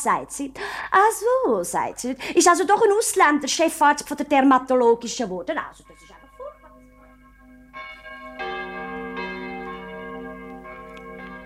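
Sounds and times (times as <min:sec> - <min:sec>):
speech: 0:00.0 - 0:06.2
church bell striking eleven o'clock: 0:05.5 - 0:11.4.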